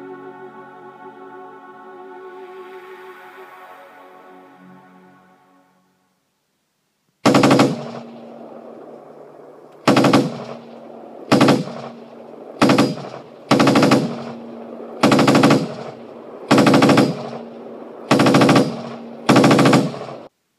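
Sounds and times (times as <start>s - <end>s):
humming drone: 0.0s - 6.0s, 7.2s - 20.3s
gauss gun mounted atop a vehicle firing heavy bursts: 7.2s - 8.2s, 9.8s - 17.5s, 18.1s - 20.3s.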